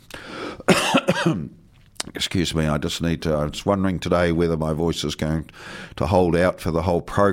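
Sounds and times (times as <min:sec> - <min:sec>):
person coughing: 0:00.7 - 0:01.6
speech: 0:01.1 - 0:07.3.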